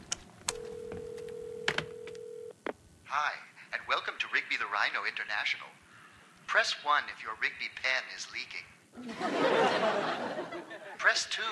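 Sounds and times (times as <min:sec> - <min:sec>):
telephone ring tone over a phone line: 0:00.5 - 0:02.6
speech: 0:03.2 - 0:05.8, 0:06.5 - 0:11.5
laughter: 0:09.0 - 0:11.1.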